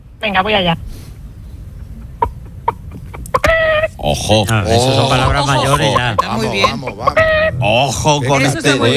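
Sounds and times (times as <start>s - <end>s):
speech: 0.2s - 1.0s, 4.0s - 8.9s
person imitating hen clucking: 2.0s - 8.6s.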